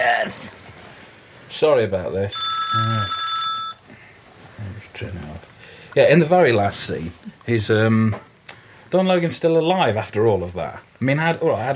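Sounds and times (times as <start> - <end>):
speech: 1.6 - 3.2, 5.0 - 5.3, 6.0 - 8.3, 8.9 - 11.7
mobile phone ringtone with bright electronic tones: 2.3 - 3.8.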